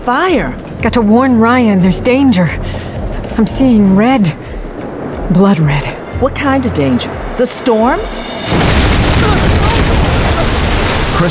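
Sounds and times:
speech: 0:00.0 - 0:04.6, 0:05.3 - 0:09.6
explosion sound effect roaring boom: 0:08.1 - 0:11.2.

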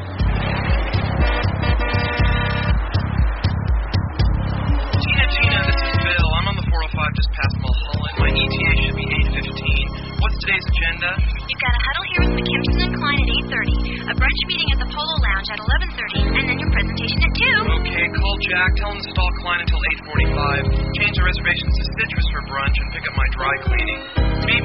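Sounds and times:
song with horn-like synth chords and punchy beat: 0:00.2 - 0:24.6.

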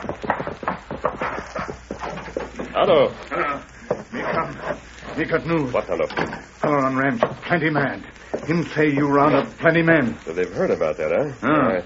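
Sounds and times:
horse galloping hard as its rider arrives: 0:00.0 - 0:02.7
speech: 0:02.8 - 0:11.8.

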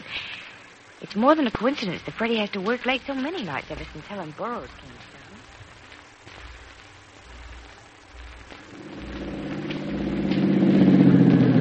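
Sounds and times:
speech: 0:01.1 - 0:05.2
car engine humming while driving: 0:08.2 - 0:11.5.

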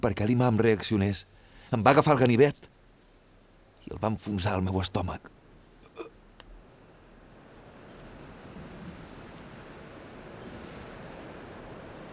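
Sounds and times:
speech: 0:00.0 - 0:02.7, 0:03.9 - 0:05.4
rain falling: 0:04.9 - 0:12.1.

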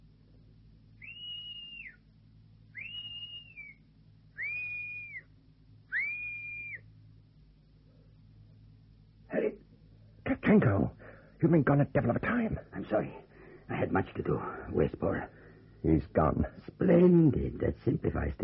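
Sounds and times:
clear sustained whistle blasts given as a signal: 0:01.0 - 0:02.1, 0:02.7 - 0:05.3, 0:05.9 - 0:06.9
speech: 0:10.5 - 0:18.4.

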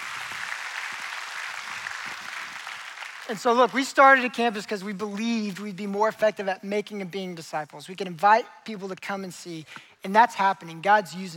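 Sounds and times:
crowd applauding: 0:00.0 - 0:04.0
speech: 0:03.3 - 0:11.3.

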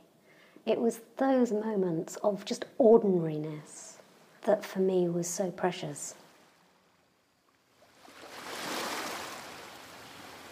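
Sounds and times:
speech: 0:00.7 - 0:03.8, 0:04.4 - 0:06.2
Atlantic waves breaking on a sandy island beach: 0:07.9 - 0:10.4
steady hissing wash of Atlantic surf: 0:08.1 - 0:10.4.

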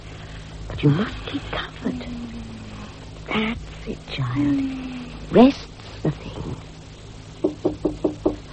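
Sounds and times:
speech: 0:00.8 - 0:01.7, 0:03.4 - 0:05.6
police inspector knocking on a locked door: 0:07.4 - 0:08.4.

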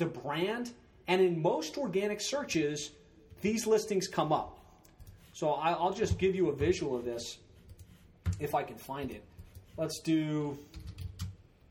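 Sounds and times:
speech: 0:00.0 - 0:04.6, 0:05.4 - 0:07.4, 0:08.4 - 0:10.9
keystrokes on a computer keyboard while typing a search: 0:10.7 - 0:11.4.

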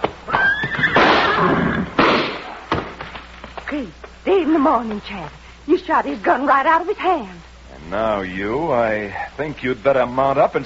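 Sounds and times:
horse whinnying loudly: 0:00.3 - 0:02.0
sharp slaps on a horse's flanks: 0:01.0 - 0:01.3, 0:02.0 - 0:03.1
speech: 0:03.8 - 0:10.6.

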